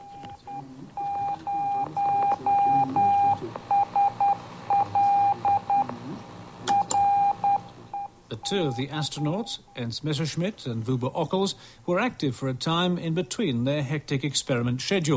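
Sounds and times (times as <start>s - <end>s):
Morse code beacon tone on 2 metres: 0.0s - 9.9s
noisy radio channel crackle and hiss: 0.0s - 15.1s
speech: 8.5s - 15.1s.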